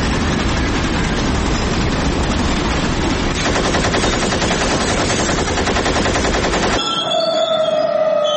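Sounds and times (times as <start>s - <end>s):
heavy machine gun fire: 0.2s - 6.8s
faint high whine ringing: 6.8s - 8.3s.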